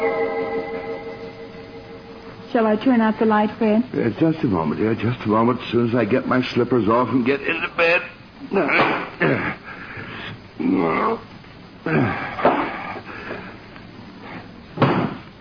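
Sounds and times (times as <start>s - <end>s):
speech: 2.5s - 9.6s, 10.7s - 12.2s
vocal noises: 7.4s - 13.1s
book knocked off a night table thudding on the floor: 14.8s - 15.2s.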